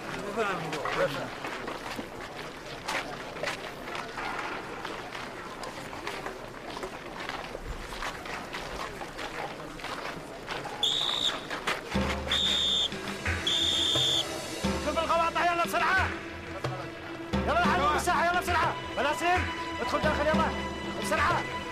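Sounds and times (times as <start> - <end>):
people talking loudly: 0.0 - 21.6
speech: 0.4 - 1.5
sharp whistle blasts signaling end of yard time: 10.8 - 11.5, 12.3 - 14.5.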